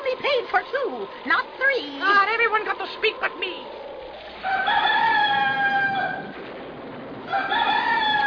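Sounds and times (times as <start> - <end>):
speech: 0.5 - 3.8
rooster crowing at dawn: 4.3 - 6.4, 7.2 - 8.2.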